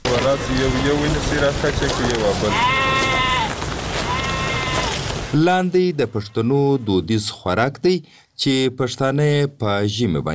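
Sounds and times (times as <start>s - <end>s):
speech: 0.3s - 2.9s, 5.3s - 10.3s
village flock of sheep bleating before slaughter: 1.8s - 5.4s.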